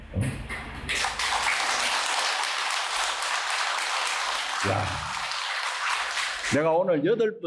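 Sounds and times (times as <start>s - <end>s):
audience applause: 0.9s - 6.6s
speech: 6.5s - 7.4s.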